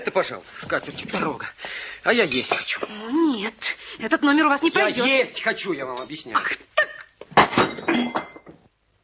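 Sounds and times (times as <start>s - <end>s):
speech: 0.0s - 6.7s
thrown plate crashing and clattering: 7.3s - 8.6s.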